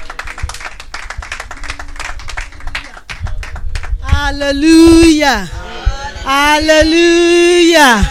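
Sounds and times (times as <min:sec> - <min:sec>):
audience applause: 0:00.0 - 0:04.0
speech: 0:04.3 - 0:05.6, 0:06.2 - 0:08.0.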